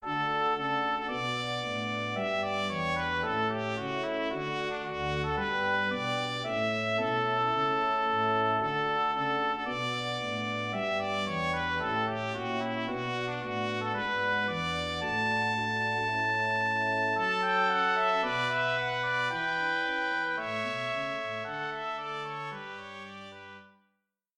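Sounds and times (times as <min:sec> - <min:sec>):
trumpet tune: 0:00.0 - 0:23.9.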